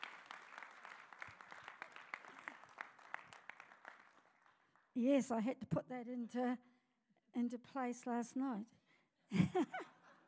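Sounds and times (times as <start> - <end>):
audience applause with many hands clapping: 0.0 - 4.6
speech: 5.0 - 6.7, 7.4 - 9.9.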